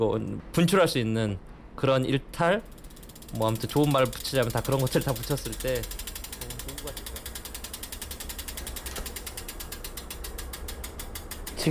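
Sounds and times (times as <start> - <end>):
speech: 0.0 - 6.0
bicycle rear hub ratchet clicking while freewheeling: 2.6 - 11.6.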